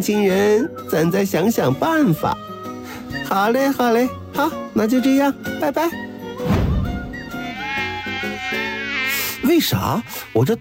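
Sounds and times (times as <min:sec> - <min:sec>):
speech: 0:00.0 - 0:02.4, 0:03.3 - 0:06.1, 0:09.5 - 0:10.6
mosquitoes buzzing around: 0:04.2 - 0:10.6.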